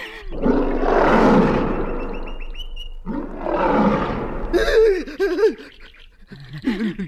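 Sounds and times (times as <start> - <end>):
lion roaring: 0.0 - 5.2.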